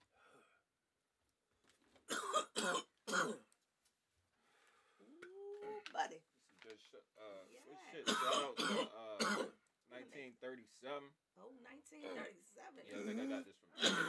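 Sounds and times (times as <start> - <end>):
person clearing throat harshly: 2.1 - 3.4, 8.0 - 9.5, 13.0 - 14.0
person coughing: 2.1 - 3.4, 8.0 - 9.5, 13.8 - 14.0
speech: 10.6 - 14.0.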